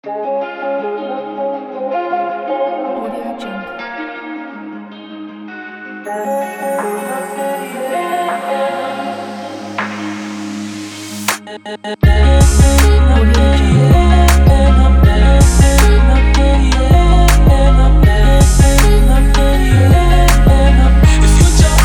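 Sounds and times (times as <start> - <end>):
guitar: 0.0 - 21.8
vocals: 0.0 - 21.8
emotional trap beat: 11.2 - 21.8.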